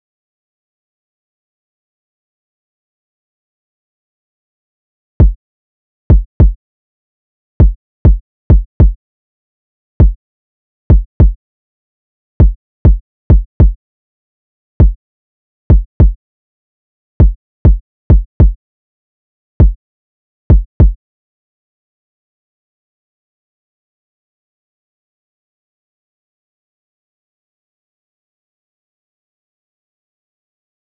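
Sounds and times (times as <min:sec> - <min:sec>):
defeated kick drum: 0:06.1 - 0:06.6, 0:07.6 - 0:09.0, 0:10.9 - 0:11.4, 0:12.4 - 0:13.8, 0:14.8 - 0:15.0, 0:15.7 - 0:16.2, 0:17.2 - 0:18.6, 0:20.5 - 0:21.0.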